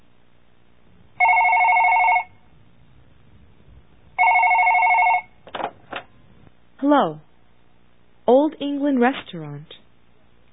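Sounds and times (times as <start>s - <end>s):
telephone ringing at a restaurant: 1.2s - 2.4s, 4.2s - 5.5s
telephone receiver clatter: 5.4s - 6.2s
speech: 6.9s - 7.3s, 8.3s - 9.8s.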